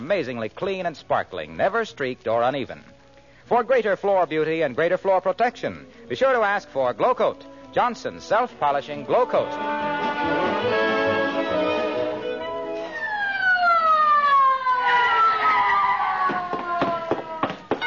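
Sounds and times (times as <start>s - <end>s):
speech: 0.1s - 10.4s
ambulance siren wailing: 9.4s - 17.7s.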